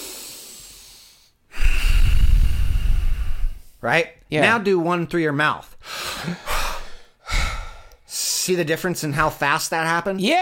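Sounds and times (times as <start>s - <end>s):
person breathing in and out through the nose: 0.0s - 3.8s, 5.8s - 8.1s
speech: 3.8s - 6.5s, 8.5s - 10.4s.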